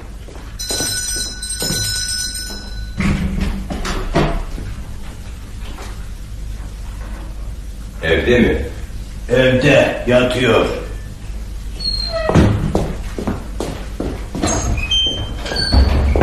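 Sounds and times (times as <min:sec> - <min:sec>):
low hum: 0:00.0 - 0:16.2
doorbell ringing at the front door: 0:00.6 - 0:03.1
speech: 0:08.1 - 0:08.7, 0:09.3 - 0:10.8.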